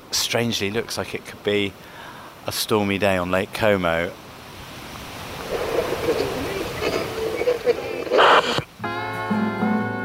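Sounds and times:
speech: 0.3 - 4.2
waves crashing on a forested shoreline: 1.0 - 8.8
music: 8.8 - 10.0.

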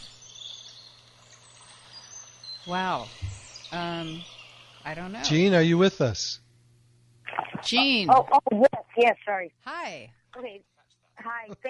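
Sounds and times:
faint high-pitched bird chirping over a caller's phone line from their house: 0.0 - 5.9
low constant hum: 0.0 - 11.6
speech: 2.6 - 6.4, 7.6 - 11.6.

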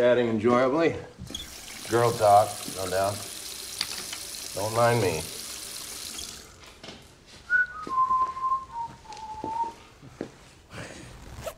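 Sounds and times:
speech: 0.0 - 3.3, 4.6 - 5.4
person whistling a slow low-key tune: 7.5 - 9.8
zipper: 11.1 - 11.5.

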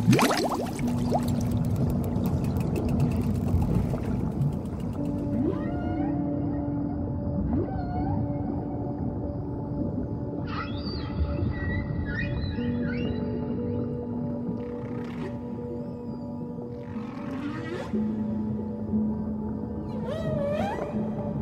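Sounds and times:
splashy plunge into water: 0.0 - 1.6
underwater rush: 0.0 - 5.0
whale-like calls and whistles echoing through water: 5.0 - 21.4.

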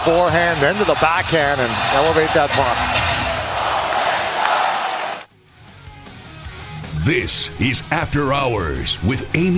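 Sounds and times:
speech: 0.0 - 3.0, 7.0 - 9.5
hockey arena crowd roaring and yelling in unison: 0.0 - 5.3.

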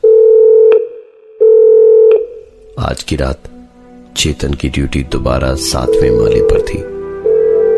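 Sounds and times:
hotel corridor telephone ringing with an electronic tone: 0.0 - 0.8, 1.4 - 2.4, 5.8 - 7.7
speech: 2.8 - 3.5, 4.2 - 7.0.

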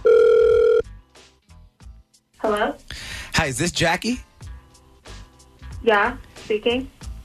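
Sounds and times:
telephone ringback tone of an outgoing call: 0.0 - 0.9
speech: 2.5 - 2.8, 3.4 - 4.3, 5.8 - 7.0.

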